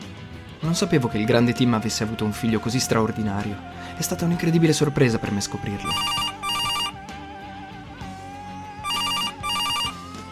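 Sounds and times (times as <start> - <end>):
low bed of music: 0.0 - 10.3
speech: 0.6 - 6.3
telephone ringing with trilling electronic tone: 5.8 - 7.0, 8.8 - 10.1.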